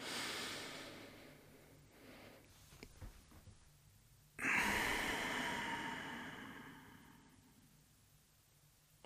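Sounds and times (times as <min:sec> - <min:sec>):
deep belly breathing in a guided breathing exercise: 0:00.0 - 0:02.5, 0:04.4 - 0:07.8.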